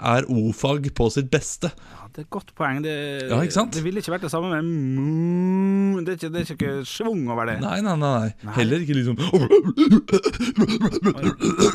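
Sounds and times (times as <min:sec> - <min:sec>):
speech: 0:00.0 - 0:11.7
person imitating a pig with short throaty grunts: 0:04.7 - 0:06.0, 0:09.2 - 0:11.7.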